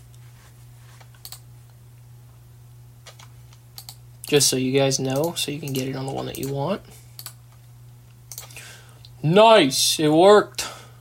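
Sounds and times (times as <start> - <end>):
steady low hum: 0.0 - 11.0
computer mouse clicking to set desktop picture: 1.1 - 1.4, 3.0 - 4.0, 5.1 - 6.6, 7.2 - 7.4, 8.3 - 8.5
speech: 4.3 - 7.0, 9.2 - 10.6.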